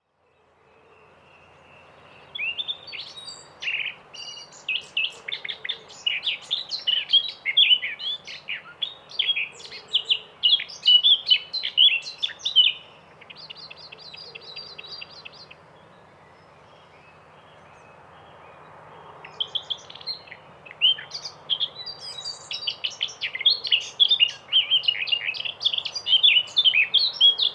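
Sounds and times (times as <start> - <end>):
blackcap Sylvia atricapilla singing: 0.0 - 27.5.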